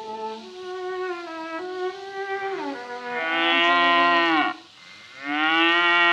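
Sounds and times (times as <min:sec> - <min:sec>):
cow mooing: 0:02.7 - 0:04.6, 0:05.2 - 0:06.1.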